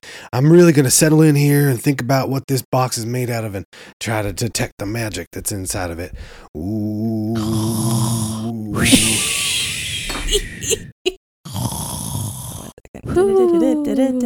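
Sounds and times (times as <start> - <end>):
speech: 0.3 - 7.8, 8.7 - 9.3, 13.1 - 14.2
exaggerated snoring performed by a voice: 6.5 - 10.9, 11.5 - 13.6.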